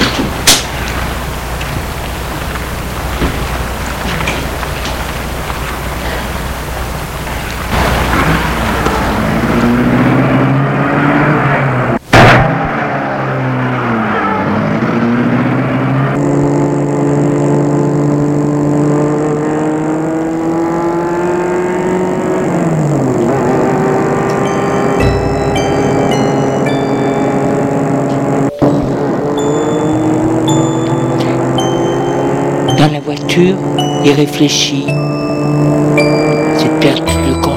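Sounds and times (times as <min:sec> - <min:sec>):
car engine revving as the car pulls away: 0:00.0 - 0:37.5
steady road rumble: 0:00.0 - 0:37.5
speech: 0:33.4 - 0:35.0.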